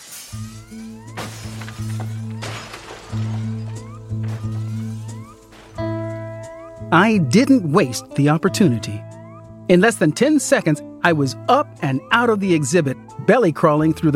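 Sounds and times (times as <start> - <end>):
glass jewel cases smashed with a crowbar in an exhibit hallway: 0.0 - 6.7
steady ringing alarm-like tones: 0.4 - 7.0
speech: 6.9 - 9.1, 9.7 - 14.1.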